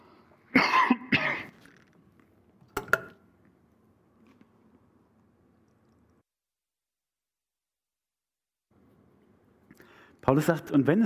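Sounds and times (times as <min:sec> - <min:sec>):
harsh coughs: 0:00.5 - 0:01.6
speech: 0:10.3 - 0:11.0.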